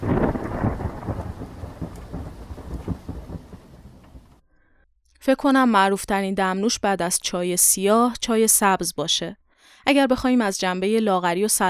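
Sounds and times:
deep rumble of thunder: 0.0 - 4.4
steady rain pouring: 0.0 - 4.4
speech: 5.2 - 11.6.

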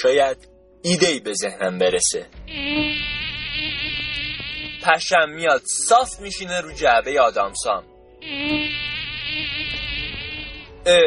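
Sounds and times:
speech: 0.0 - 4.2, 4.8 - 8.6, 10.8 - 11.0
high thin mosquito whine: 2.4 - 5.0, 8.2 - 11.0.

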